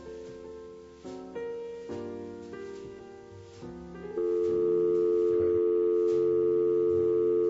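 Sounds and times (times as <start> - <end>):
phone dialing tones: 4.1 - 7.4.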